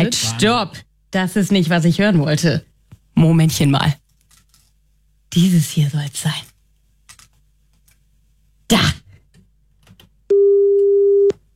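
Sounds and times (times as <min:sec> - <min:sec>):
speech: 0:00.1 - 0:04.0, 0:05.3 - 0:06.5, 0:08.7 - 0:09.0
telephone ringback tone on a call being placed: 0:10.3 - 0:11.3.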